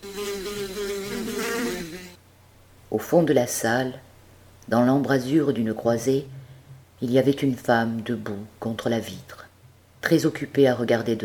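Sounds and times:
swarm of flies buzzing in a room: 0.0s - 2.2s
speech: 2.9s - 4.0s, 4.7s - 6.4s, 7.0s - 9.4s, 10.0s - 11.2s.

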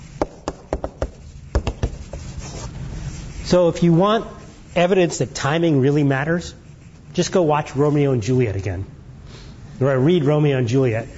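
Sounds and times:
handwriting strokes by hand: 0.0s - 7.4s
speech: 3.5s - 9.0s, 9.8s - 11.1s.

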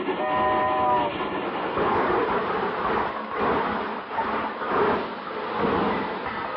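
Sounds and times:
train horn: 0.0s - 1.2s
presidential special train pulling in at a station platform: 0.0s - 6.5s
train wheels and carriages clattering on the track: 0.0s - 6.5s.

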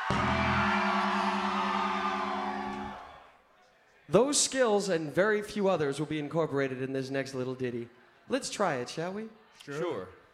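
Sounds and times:
large audience screaming loudly: 0.0s - 3.3s
speech: 4.1s - 10.2s.

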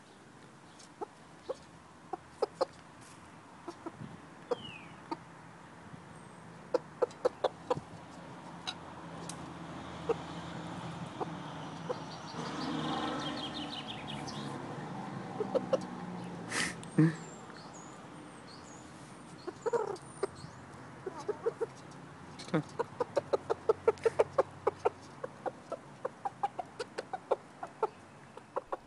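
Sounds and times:
chickens clucking: 0.8s - 2.9s, 3.6s - 5.3s, 6.5s - 14.6s, 15.2s - 16.4s, 19.3s - 28.8s.

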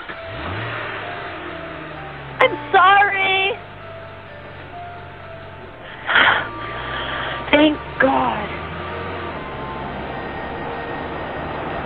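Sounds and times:
car engine revving hard and accelerating away: 0.0s - 11.8s
speech: 2.5s - 3.3s.

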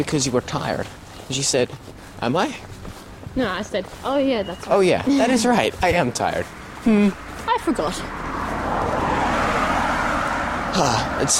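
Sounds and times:
speech: 0.0s - 2.7s, 3.4s - 8.2s, 10.8s - 11.3s
Nissan Maxima car driving past with engine and tire roar: 5.6s - 11.3s.

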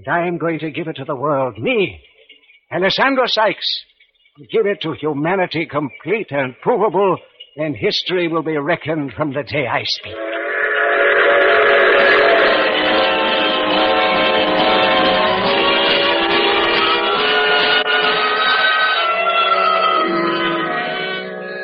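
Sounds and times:
speech: 0.0s - 2.1s, 2.7s - 10.3s
train rolling along the rails: 10.1s - 17.9s
train whistle: 10.1s - 21.6s.

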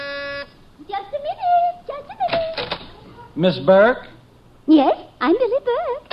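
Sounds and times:
electric door buzzer: 0.0s - 0.6s
speech: 3.4s - 4.1s, 4.7s - 6.0s.

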